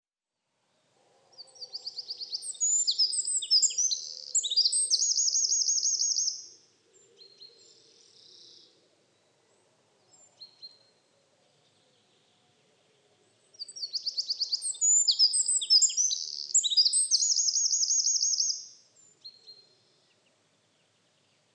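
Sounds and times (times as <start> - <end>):
Eurasian wren singing high notes and trills: 1.5 - 6.6, 13.5 - 19.4.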